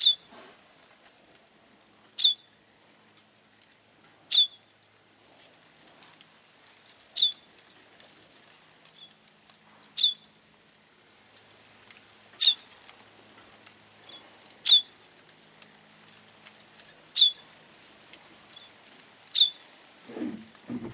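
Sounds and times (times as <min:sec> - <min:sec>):
bird giving sharp very high downslurred chirps: 0:00.0 - 0:00.3, 0:02.2 - 0:02.5, 0:04.3 - 0:04.7, 0:07.2 - 0:07.5, 0:10.0 - 0:10.3, 0:12.4 - 0:12.7, 0:14.1 - 0:15.0, 0:17.2 - 0:17.4, 0:19.4 - 0:19.6.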